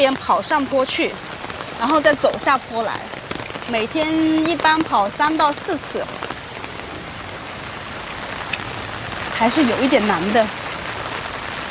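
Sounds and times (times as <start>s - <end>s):
speech: 0.0s - 6.2s, 9.4s - 10.6s
rain falling on an outdoor running spot: 0.0s - 11.6s.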